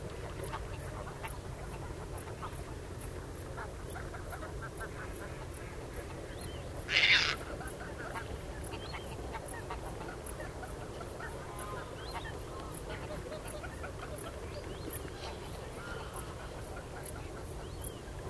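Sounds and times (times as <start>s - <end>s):
faint bird calls: 0.0s - 18.2s
Caspian tern harsh rasping call: 6.9s - 7.4s.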